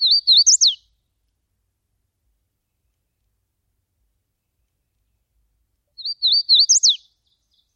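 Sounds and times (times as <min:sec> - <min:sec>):
bird song warbled phrase: 0:00.0 - 0:00.8, 0:06.0 - 0:07.7.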